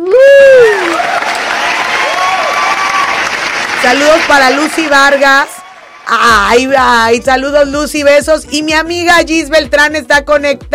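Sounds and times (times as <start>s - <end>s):
brief burst of clapping: 0.0s - 5.6s
loud whooping cheer: 0.0s - 6.1s
speech: 3.8s - 10.7s.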